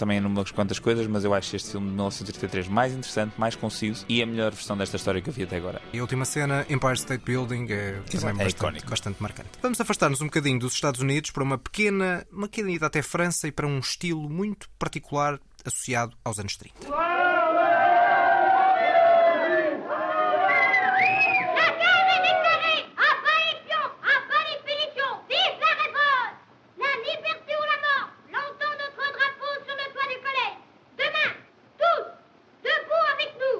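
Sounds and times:
speech: 0.0 - 17.4
crowd of children shouting in a 1930s French film scene: 17.0 - 33.5.

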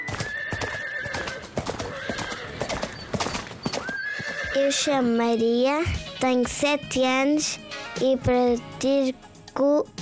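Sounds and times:
horse hooves clip-clopping at a riding arena: 0.1 - 4.9
horse neighing loudly: 0.2 - 2.7, 3.8 - 4.6
busy layered noise at a riding arena: 4.4 - 10.0
speech: 4.6 - 9.9.

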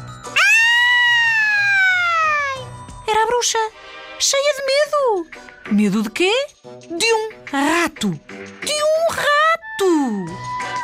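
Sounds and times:
piercing scream in the dark: 0.4 - 2.6
speech: 3.2 - 10.5.

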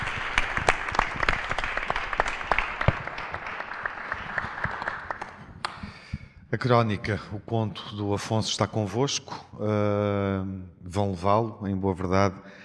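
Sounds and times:
audience applause: 0.0 - 5.8
speech: 6.6 - 12.6.

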